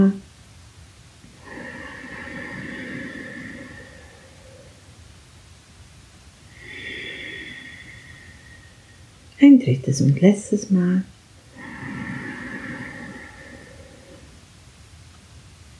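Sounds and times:
speech: 0.0s - 0.2s, 9.6s - 11.2s
slow deep belly breathing in and out during a relaxation exercise: 1.2s - 9.4s, 11.1s - 15.2s.

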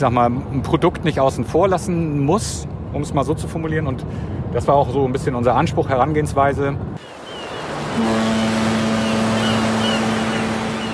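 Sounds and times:
speech: 0.0s - 7.2s, 8.0s - 8.4s
road and wind noise of a car cruising on the motorway: 0.0s - 10.9s
car engine droning: 7.0s - 10.9s.

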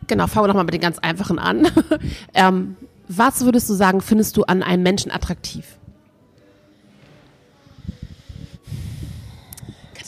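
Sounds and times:
speech: 0.1s - 5.8s
heavy breathing close to the microphone: 6.4s - 10.0s.

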